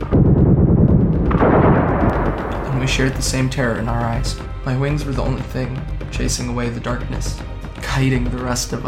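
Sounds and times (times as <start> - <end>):
continuous barrage of gunshots: 1.2 - 3.9
speech: 2.9 - 8.8.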